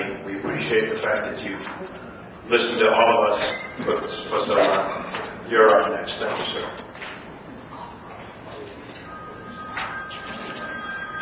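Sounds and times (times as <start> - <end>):
murmur of a meeting: 0.0 - 10.5
speech: 0.6 - 6.8
cell phone ringing: 9.0 - 11.2.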